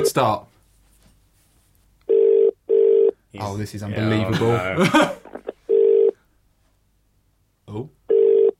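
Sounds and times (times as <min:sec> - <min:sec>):
speech: 0:00.0 - 0:00.5, 0:03.4 - 0:05.2, 0:07.7 - 0:08.0
phone ringback tone in paired bursts: 0:02.1 - 0:03.2, 0:05.7 - 0:06.2, 0:08.1 - 0:08.5
laughter: 0:04.1 - 0:05.6.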